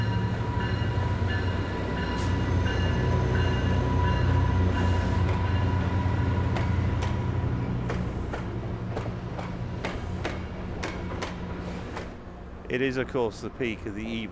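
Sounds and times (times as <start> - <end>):
commuter trains rumbling through a station: 0.0 - 14.3
railcars clanking and clicking: 0.0 - 14.3
speech: 12.8 - 14.3.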